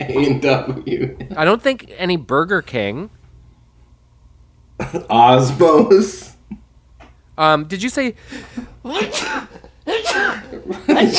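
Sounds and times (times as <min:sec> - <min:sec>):
speech: 0:00.1 - 0:03.2, 0:04.9 - 0:06.6, 0:07.4 - 0:11.1
sneezes: 0:08.9 - 0:11.1.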